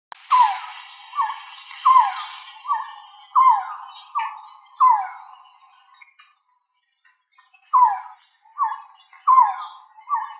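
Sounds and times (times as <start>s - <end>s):
resplendent quetzal calling with whining falling notes: 0.2s - 5.9s, 7.7s - 10.3s.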